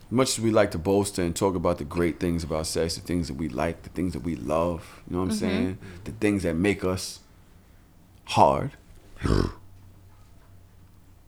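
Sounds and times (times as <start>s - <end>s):
faint hum: 0.0s - 11.2s
speech: 0.1s - 7.2s, 8.3s - 9.6s
man imitating a growl: 5.3s - 5.9s, 9.2s - 9.6s.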